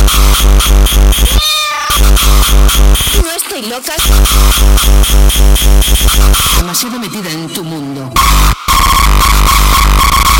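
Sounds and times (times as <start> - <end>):
loud rhythmic pulsing beat: 0.0 - 10.3
cat meowing: 1.3 - 2.2
speech: 3.7 - 9.6.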